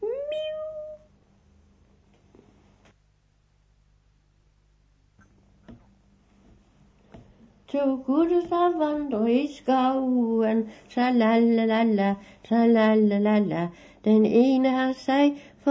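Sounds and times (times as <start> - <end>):
kitten meowing: 0.0 - 1.1
faint steady hiss: 0.0 - 15.6
speech: 7.7 - 15.6.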